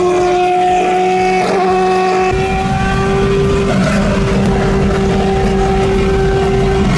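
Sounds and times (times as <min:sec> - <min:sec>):
Formula 1 car engine whine speeding on a Czech motorway: 0:00.0 - 0:06.9
heavy road and wind rumble: 0:02.3 - 0:06.9.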